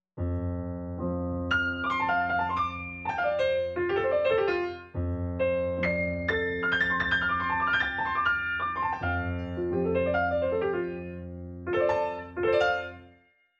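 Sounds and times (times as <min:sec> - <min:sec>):
piano transition: 0:00.2 - 0:13.1.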